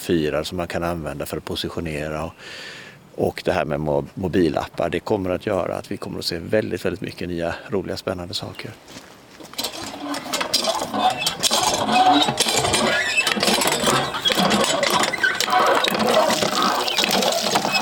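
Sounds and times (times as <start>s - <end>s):
speech: 0.0s - 9.1s
water gushing and splashing from a hand pump: 9.6s - 17.8s.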